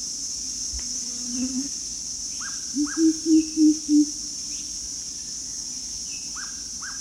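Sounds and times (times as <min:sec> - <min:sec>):
Greater coucal deep even hoots: 0:02.8 - 0:04.1.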